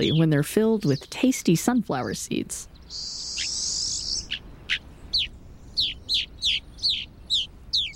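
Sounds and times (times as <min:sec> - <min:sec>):
rosy finch calls: 0:00.0 - 0:01.2, 0:02.8 - 0:07.9
speech: 0:00.0 - 0:03.2.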